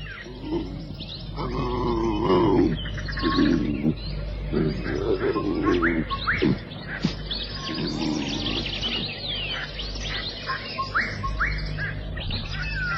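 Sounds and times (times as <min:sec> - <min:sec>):
deeper grunting animal sounds: 0:00.0 - 0:09.8
bird crying at dusk: 0:00.0 - 0:12.9
steady low rumble of outdoor ambience: 0:00.0 - 0:12.9.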